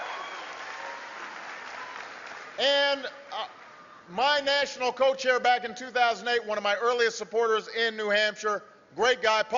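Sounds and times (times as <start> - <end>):
audience applause at a political campaign event: 0.0 - 2.6
speech: 2.6 - 9.5.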